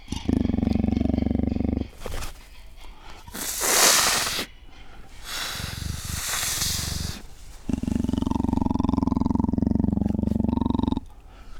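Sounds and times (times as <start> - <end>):
juvenile Panthera pardus vocalizing: 0.0 - 11.5.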